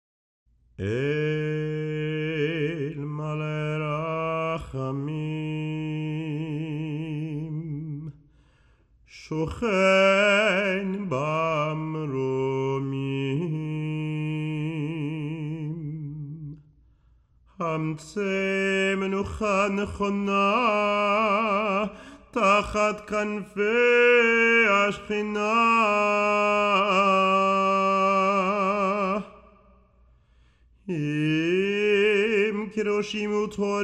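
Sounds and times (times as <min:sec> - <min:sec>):
person chanting a Jewish memorial prayer: 0:00.8 - 0:08.2, 0:09.2 - 0:16.6, 0:17.6 - 0:29.6, 0:30.9 - 0:33.8.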